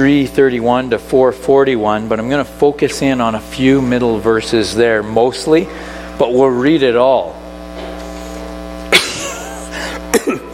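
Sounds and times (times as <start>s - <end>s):
speech: 0.0s - 7.4s
steady low hum: 0.9s - 10.4s
person coughing from a chest cold: 8.9s - 10.5s.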